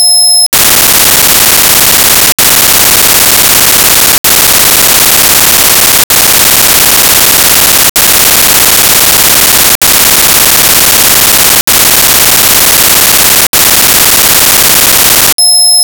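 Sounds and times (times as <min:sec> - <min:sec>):
OFDM signal: 0:00.0 - 0:15.8.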